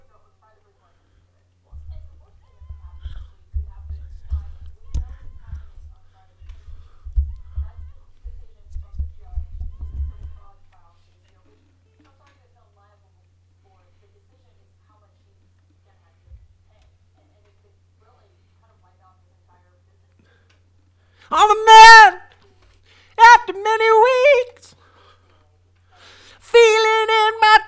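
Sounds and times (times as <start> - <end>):
dance vocal: 21.3 - 22.2, 23.2 - 24.6, 26.4 - 27.6.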